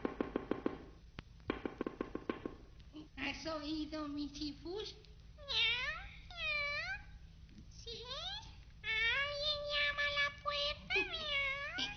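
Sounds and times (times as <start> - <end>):
faint steady low hum: 0.0 - 11.9
speech: 3.4 - 5.7
black cat meowing: 5.4 - 7.1, 10.9 - 11.9.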